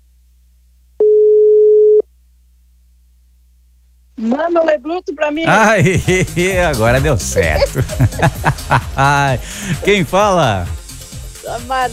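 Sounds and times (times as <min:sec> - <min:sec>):
telephone ringback tone during a call-in: 0:01.0 - 0:02.0
speech: 0:04.2 - 0:10.8, 0:11.5 - 0:11.9
laughter: 0:05.5 - 0:10.6.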